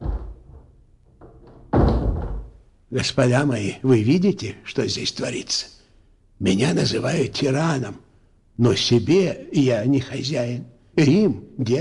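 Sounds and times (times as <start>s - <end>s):
heavy wooden doors thumping shut: 0.0s - 2.6s
speech: 2.9s - 5.8s, 6.4s - 8.0s, 8.6s - 11.8s.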